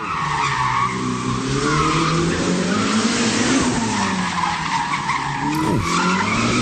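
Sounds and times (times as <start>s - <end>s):
sports car tires squealing as it skids: 0.0s - 6.6s
Ferrari SF90 Stradale V8 hybrid sports car engine roaring and revving: 5.4s - 6.6s.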